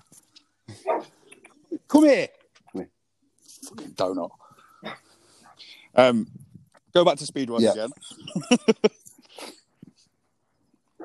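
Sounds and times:
dog barking: 0.8s - 1.2s
speech: 1.9s - 2.9s, 4.0s - 5.0s, 6.0s - 9.5s
laughter: 7.8s - 9.0s.

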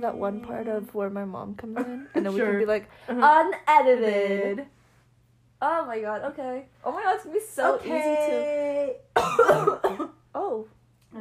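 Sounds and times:
speech: 0.0s - 4.8s, 5.6s - 11.1s
person coughing: 9.2s - 10.2s.

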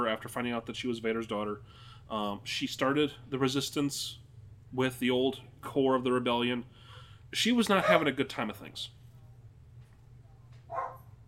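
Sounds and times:
speech: 0.1s - 9.0s
dog barking: 7.8s - 8.1s, 10.7s - 11.1s.

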